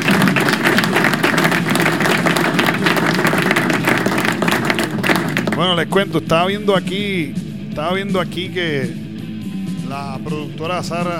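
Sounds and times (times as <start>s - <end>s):
audience applause: 0.0s - 5.7s
speech: 5.6s - 9.0s, 9.9s - 11.1s.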